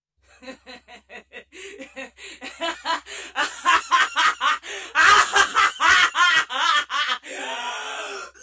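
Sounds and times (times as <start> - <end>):
woman laughing evilly: 0.3 - 7.2.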